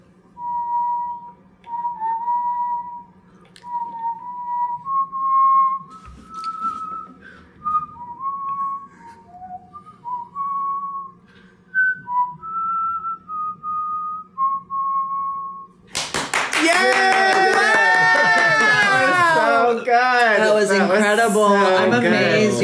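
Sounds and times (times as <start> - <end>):
faint room hum: 0.0 - 22.6
person whistling a slow sweeping movie theme melody: 0.3 - 15.8
laughter: 16.6 - 19.9.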